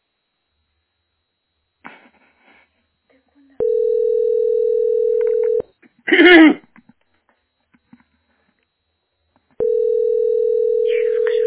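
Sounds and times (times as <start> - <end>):
telephone dial tone while a call is placed: 3.6 - 5.6, 9.6 - 11.4.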